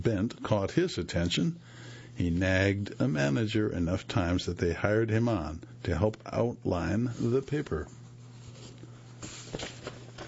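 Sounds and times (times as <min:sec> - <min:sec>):
speech: 0:00.0 - 0:08.0
faint steady low hum: 0:00.0 - 0:10.2
page of a long printed article turning: 0:07.1 - 0:10.2.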